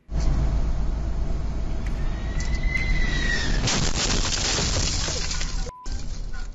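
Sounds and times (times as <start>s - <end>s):
road rumble inside a vehicle: 0.0s - 6.5s
loud broadband crash of jet wheel hitting a truck: 3.3s - 5.7s.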